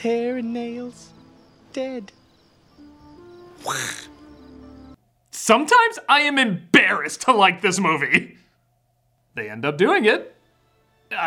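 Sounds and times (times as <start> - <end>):
speech: 0.0 - 1.2, 1.8 - 2.2, 3.6 - 4.1, 5.4 - 8.4, 9.4 - 10.4
female movie character quacking like a duck: 3.6 - 4.1
steady hum: 4.9 - 10.7.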